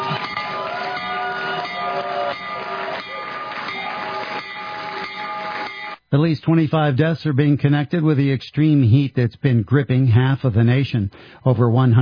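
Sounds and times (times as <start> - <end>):
stock exchange opening bell ringing: 0.0 - 6.0
dense noise: 0.0 - 11.9
speech: 6.1 - 11.9.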